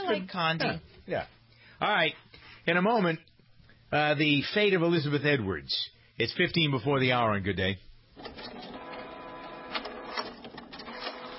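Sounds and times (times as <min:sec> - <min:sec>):
speech: 0:00.1 - 0:03.3, 0:03.9 - 0:08.7
inkjet printer printing: 0:08.2 - 0:11.3.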